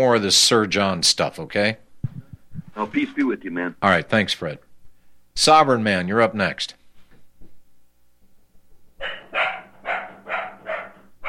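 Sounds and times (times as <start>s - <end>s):
speech: 0.0s - 1.8s, 2.8s - 4.7s, 5.4s - 6.8s
faint low background noise: 0.0s - 11.2s
dog barking: 9.0s - 11.2s.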